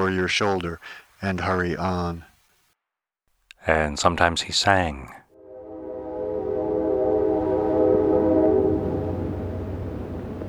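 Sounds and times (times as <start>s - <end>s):
speech: 0.0s - 2.3s, 3.6s - 5.2s
freight coal train rolling past: 5.3s - 10.4s.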